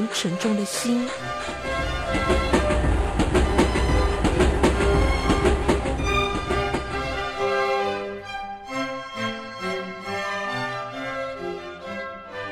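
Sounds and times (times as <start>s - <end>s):
speech: 0.0s - 3.0s
gentle music: 0.0s - 12.5s
steam train chugging along tracks pulling away from a station platform: 0.1s - 8.2s.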